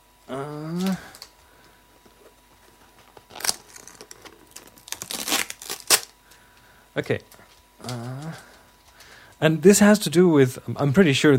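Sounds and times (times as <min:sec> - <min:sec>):
person vocal sound: 0:00.3 - 0:01.2, 0:07.8 - 0:08.6
packing tape torn open on the side of a taped black box: 0:03.0 - 0:06.2
speech: 0:07.0 - 0:08.0, 0:09.4 - 0:11.3.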